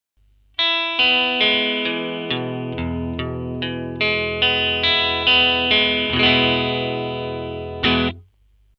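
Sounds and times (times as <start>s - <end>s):
vintage and reissue Jaguar electric guitar with neck strangle: 0.6s - 8.2s.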